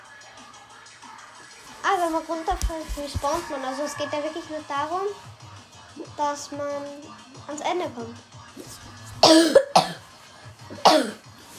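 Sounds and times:
speech: 0:02.0 - 0:05.4, 0:06.0 - 0:08.3, 0:09.3 - 0:09.7
person coughing: 0:09.2 - 0:10.0, 0:10.7 - 0:11.3.

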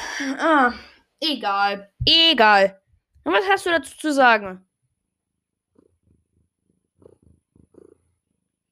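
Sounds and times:
speech: 0:00.2 - 0:04.7
cat purring: 0:05.8 - 0:08.7.

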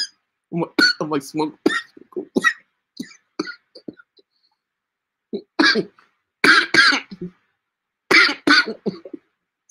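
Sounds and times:
speech: 0:00.5 - 0:01.8, 0:05.7 - 0:06.0
harsh hacking coughs: 0:00.8 - 0:01.0, 0:01.7 - 0:04.1, 0:05.3 - 0:07.3, 0:08.1 - 0:09.3
throat clearing: 0:01.7 - 0:04.1, 0:05.3 - 0:07.3, 0:08.2 - 0:09.3.

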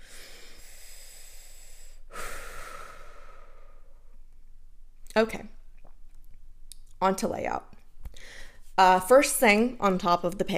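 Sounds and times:
person taking a deep breath: 0:00.0 - 0:04.0, 0:08.1 - 0:08.7
speech: 0:05.2 - 0:05.6, 0:07.0 - 0:10.5.

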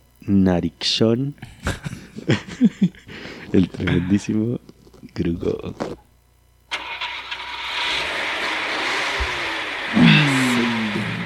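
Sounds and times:
speech: 0:00.3 - 0:06.0
laughter: 0:01.4 - 0:04.2
car engine cranking, idling and revving: 0:06.7 - 0:11.2.

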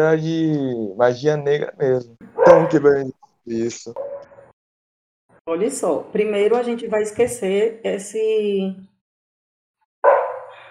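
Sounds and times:
speech: 0:00.0 - 0:04.1, 0:05.5 - 0:08.9
dog barking indoors: 0:02.3 - 0:02.9, 0:04.0 - 0:04.4, 0:10.1 - 0:10.6.

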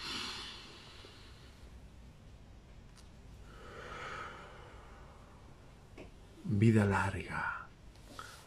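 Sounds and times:
slow deep breathing: 0:00.0 - 0:01.8, 0:03.4 - 0:05.9
speech: 0:06.6 - 0:07.6.

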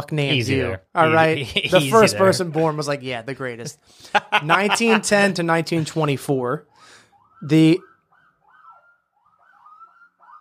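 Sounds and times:
speech: 0:00.0 - 0:07.9
police sirens wailing outside: 0:00.3 - 0:02.5, 0:04.2 - 0:05.3, 0:06.6 - 0:10.3
laughter: 0:00.3 - 0:02.8, 0:03.6 - 0:06.2.

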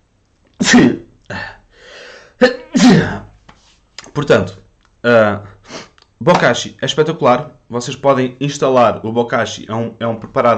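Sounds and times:
person sneezing: 0:00.6 - 0:03.4
breathy inhales: 0:01.4 - 0:02.4
speech: 0:04.2 - 0:05.5, 0:06.2 - 0:10.5.

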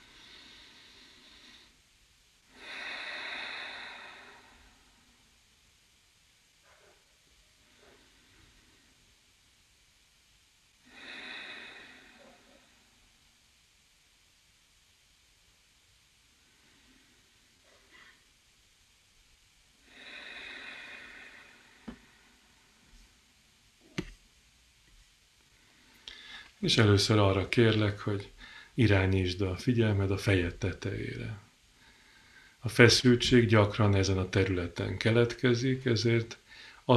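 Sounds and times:
person taking slow deep breaths, inhaling through the nose and exhaling through the mouth: 0:00.0 - 0:01.8, 0:02.4 - 0:05.4, 0:07.6 - 0:09.1, 0:10.8 - 0:13.2, 0:16.4 - 0:18.2, 0:19.8 - 0:23.0, 0:25.5 - 0:26.6, 0:28.3 - 0:28.8, 0:31.7 - 0:32.6, 0:36.4 - 0:36.9
low steady hiss: 0:00.0 - 0:36.9
speech: 0:26.6 - 0:31.4, 0:32.6 - 0:36.9.

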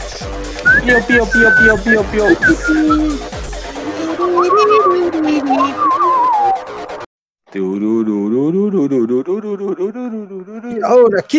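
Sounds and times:
steady low thumping beat: 0:00.1 - 0:06.0
person whistling an imitation of little birds chirping: 0:00.6 - 0:03.1, 0:04.0 - 0:07.0
laughter: 0:00.7 - 0:03.3, 0:03.9 - 0:06.2
speech: 0:00.8 - 0:03.3, 0:07.6 - 0:11.3.

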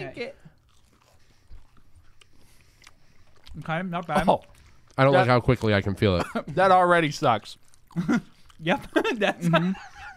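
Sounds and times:
speech: 0:00.1 - 0:00.5, 0:03.6 - 0:09.9
quiet chewing: 0:00.3 - 0:05.8, 0:07.2 - 0:09.3
laughter: 0:08.0 - 0:10.1.

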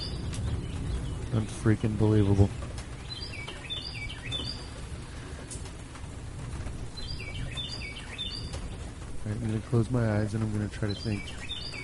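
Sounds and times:
bird singing bright descending whistled notes: 0:00.0 - 0:01.4, 0:03.0 - 0:04.8, 0:07.0 - 0:08.6, 0:10.9 - 0:11.8
steady low outdoor rumble: 0:00.0 - 0:11.8
speech: 0:01.3 - 0:02.7, 0:09.5 - 0:11.5.

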